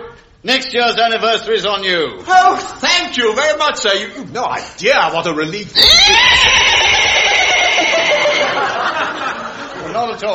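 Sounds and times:
speech: 0.2 - 7.2, 10.0 - 10.3
horse whinnying: 5.8 - 8.6
laughter: 6.6 - 10.3.

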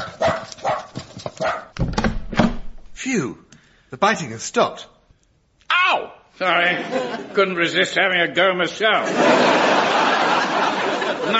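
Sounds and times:
dog barking: 0.0 - 1.8
speech: 3.0 - 5.0, 5.9 - 11.3
laughter: 6.5 - 7.8, 8.9 - 11.3.

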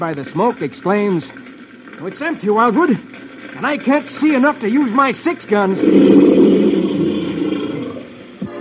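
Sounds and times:
speech: 0.0 - 6.6
tiger roaring: 5.6 - 8.3.

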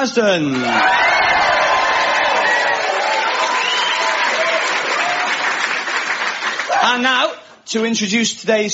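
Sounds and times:
speech: 0.0 - 1.0, 6.8 - 8.7
studio audience applause: 0.5 - 7.1
studio audience cheers and whoops: 0.6 - 5.6, 6.6 - 7.0.

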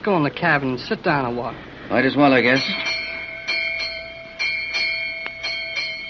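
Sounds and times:
speech: 0.0 - 2.9
ship's bell striking eight bells on a sailing boat at sea: 2.3 - 6.0.

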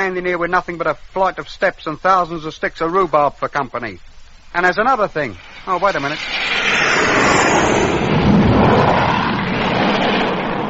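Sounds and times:
speech: 0.0 - 8.0
aircraft engine roaring overhead: 5.3 - 10.6.

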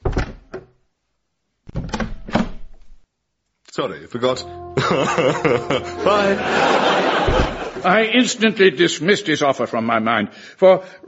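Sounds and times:
door opening and banging shut: 0.0 - 0.7, 1.7 - 3.0, 7.2 - 7.8
speech: 3.8 - 11.0
laughter: 4.8 - 8.5.

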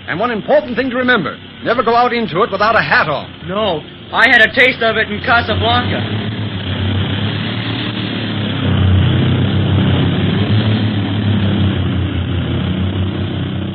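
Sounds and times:
propeller airplane engine droning in flight in windy weather: 0.0 - 13.7
speech: 0.1 - 6.2.

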